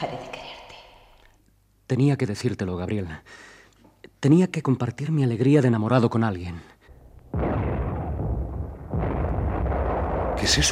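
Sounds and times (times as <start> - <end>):
speech: 0.0 - 0.4, 1.9 - 3.5, 4.2 - 6.7, 10.5 - 10.7
sustained low rumble of artillery blasts: 6.9 - 10.7
French artillery firing on fortified hill positions: 7.2 - 10.7.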